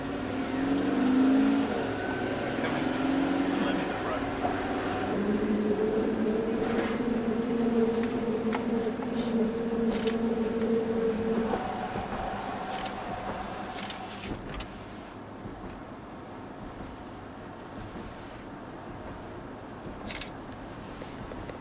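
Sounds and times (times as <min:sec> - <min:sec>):
school bus engine drone crossing a drawbridge: 0:00.0 - 0:21.5.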